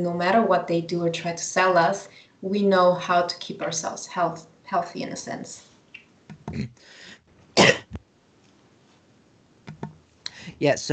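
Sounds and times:
speech: 0.0s - 5.7s, 6.5s - 7.0s, 10.6s - 10.9s
throat-clearing rasp: 6.5s - 6.7s
person coughing sharply: 7.6s - 8.0s.

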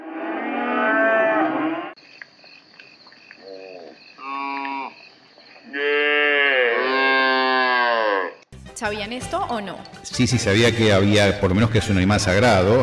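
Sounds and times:
cow mooing: 0.0s - 2.0s, 5.7s - 8.4s
insects chirring: 1.2s - 8.5s
speech: 8.8s - 12.8s.

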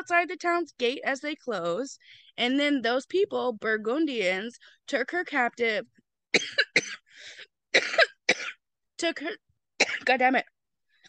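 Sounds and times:
speech: 0.0s - 8.0s, 9.0s - 9.5s, 10.1s - 10.5s
person coughing: 6.3s - 7.1s, 7.7s - 8.6s, 9.8s - 10.2s.

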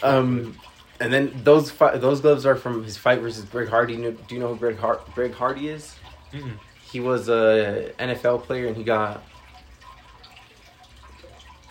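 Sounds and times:
speech: 0.0s - 9.3s
soft liquid sloshing: 0.0s - 11.6s
faint swallowing of water: 6.2s - 6.8s.

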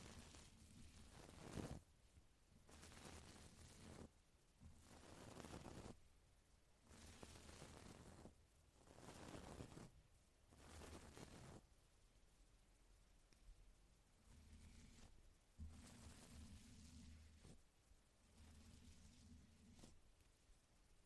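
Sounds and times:
brush sweeping across a microphone with and without windscreen: 0.0s - 1.8s, 2.7s - 6.0s, 6.9s - 9.9s, 10.5s - 11.6s, 14.2s - 17.6s, 18.2s - 20.0s.

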